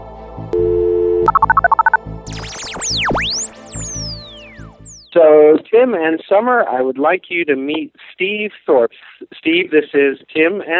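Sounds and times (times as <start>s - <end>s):
speech: 0.4s - 0.8s, 5.2s - 10.7s
phone dial tone: 0.6s - 2.0s
phone keypad beeps: 1.2s - 2.0s
swooping whistling electronic sweeps: 1.3s - 5.2s.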